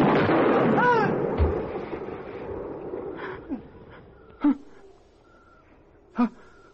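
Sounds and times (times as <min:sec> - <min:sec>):
gunshots: 0:00.0 - 0:03.2.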